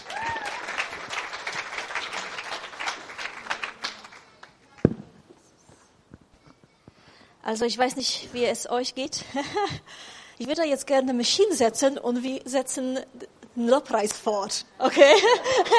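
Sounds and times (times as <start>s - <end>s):
audience applauding warmly: 0.0s - 4.6s
speech: 7.5s - 15.7s
laughter: 14.9s - 15.7s.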